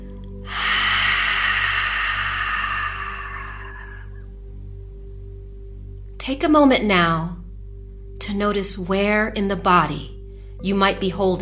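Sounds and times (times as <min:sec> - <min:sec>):
long exhalation through the mouth: 0:00.4 - 0:04.2
speech: 0:06.3 - 0:07.4, 0:08.2 - 0:11.4.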